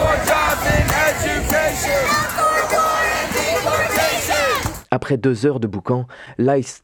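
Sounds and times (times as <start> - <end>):
large outdoor protest crowd shouting and chanting in front of a hotel: 0.0 - 4.9
speech: 5.1 - 6.8.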